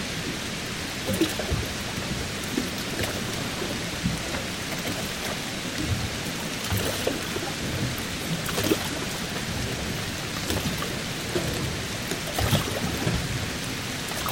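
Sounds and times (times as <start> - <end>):
rain falling on the water of a marina: 0.0 - 14.3.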